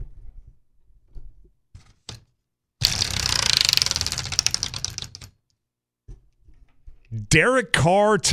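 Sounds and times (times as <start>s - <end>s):
makeshift prize wheel spinning and clicking: 2.8s - 5.3s
speech: 7.2s - 8.3s.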